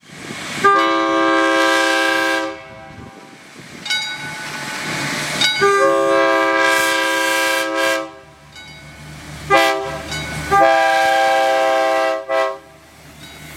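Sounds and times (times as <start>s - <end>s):
diesel train engine: 0.0s - 13.5s
train horns: 0.5s - 3.4s, 4.5s - 8.5s, 9.4s - 12.8s.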